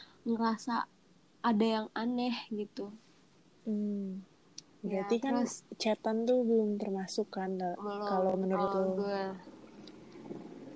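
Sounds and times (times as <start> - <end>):
speech: 0.2 - 3.0, 3.6 - 9.6
motorcycle engine rumbling outside: 7.8 - 10.7.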